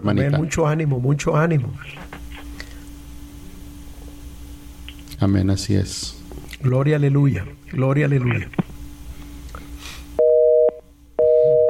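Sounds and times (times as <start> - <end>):
speech: 0.0 - 2.2, 5.2 - 8.6
phone line noise and low hum: 0.0 - 11.6
dual-pitched busy tone after a phone call is cut off: 10.2 - 11.6.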